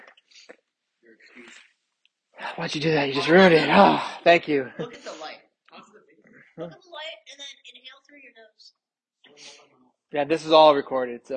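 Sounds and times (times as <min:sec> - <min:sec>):
speech: 0:02.4 - 0:05.1, 0:06.6 - 0:07.4, 0:10.1 - 0:11.3
laughter: 0:02.4 - 0:05.2
person sneezing: 0:03.2 - 0:05.2.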